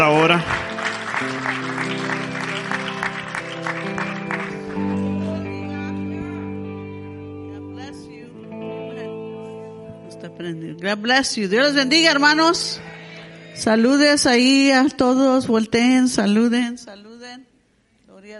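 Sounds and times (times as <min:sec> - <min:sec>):
speech: 0:00.0 - 0:00.6, 0:10.8 - 0:12.9, 0:13.6 - 0:17.5, 0:18.2 - 0:18.3
congregation applauding loudly: 0:00.0 - 0:05.7.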